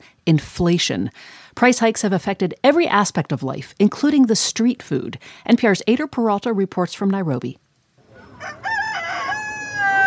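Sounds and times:
speech: 0:00.0 - 0:07.6, 0:08.4 - 0:08.7
rooster crowing at a chicken shop in Nairobi Kenya: 0:08.1 - 0:10.0.

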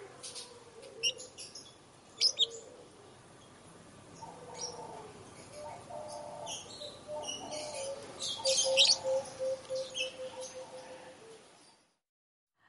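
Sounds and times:
flock of Fisher's lovebirds chattering with shrill chirps: 0:00.3 - 0:02.7, 0:04.2 - 0:10.9.

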